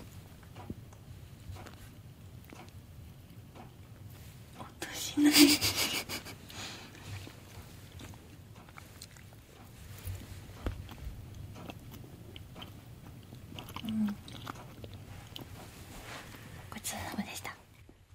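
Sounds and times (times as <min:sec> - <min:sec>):
chocolate being chewed: 0:00.3 - 0:04.7, 0:06.3 - 0:18.0
soft whispering: 0:04.6 - 0:05.4, 0:16.2 - 0:17.8.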